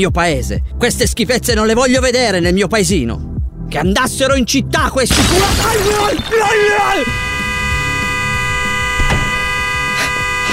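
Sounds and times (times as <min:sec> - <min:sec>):
speech: 0:00.0 - 0:07.2
car horn honking pressed by a person's head: 0:05.1 - 0:10.5.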